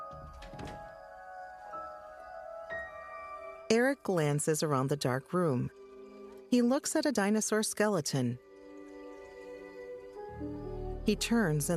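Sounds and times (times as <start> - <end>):
bedroom door shutting with a dull solid thunk: 0.0 - 1.2
speech: 3.7 - 5.8, 6.5 - 8.4, 11.1 - 11.7.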